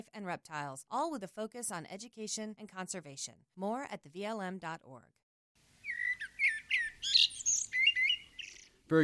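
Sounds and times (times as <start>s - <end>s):
speech: 0.2s - 5.2s, 8.9s - 9.0s
tailorbird chirping and whistling: 5.8s - 8.7s.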